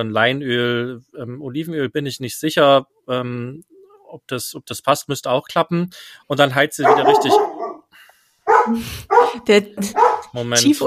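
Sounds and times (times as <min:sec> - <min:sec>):
speech: 0:00.0 - 0:07.6, 0:08.7 - 0:10.8
dog barking: 0:06.8 - 0:07.9, 0:08.5 - 0:10.4.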